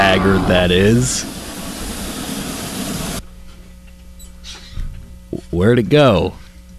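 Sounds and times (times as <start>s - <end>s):
train in a station letting off steam: 0.0s - 3.2s
train idling hum: 0.0s - 4.2s
faint mechanical rumble of a train: 0.0s - 6.7s
speech: 0.2s - 1.4s, 5.5s - 6.4s.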